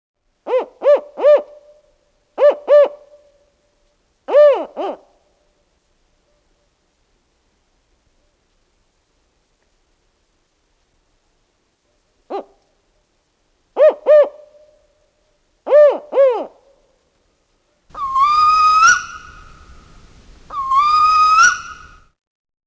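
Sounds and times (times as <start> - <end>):
spotted owl calling: 0.4 - 1.8, 2.4 - 3.2, 4.3 - 5.1, 12.3 - 12.6, 13.8 - 14.8, 15.6 - 16.7, 17.9 - 22.1.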